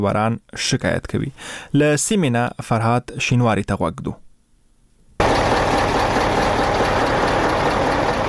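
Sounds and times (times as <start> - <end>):
speech: 0.0 - 4.2
goods trucks idling in a queue at a border crossing: 5.2 - 8.2.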